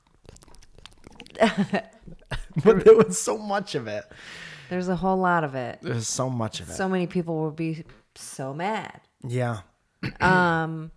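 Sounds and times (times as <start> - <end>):
wet mouth smacking and clicks: 0.0 - 2.8
speech: 1.4 - 10.9.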